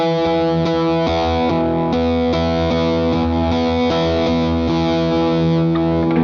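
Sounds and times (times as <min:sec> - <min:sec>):
heavily distorted electric guitar chugging a mid-low power chord: 0:00.0 - 0:06.2.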